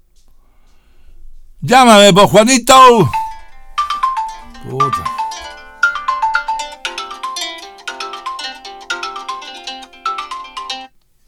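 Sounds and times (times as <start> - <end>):
speech: 1.6 - 3.2, 4.6 - 5.5
phone ringtone for an incoming WhatsApp call: 3.0 - 10.9.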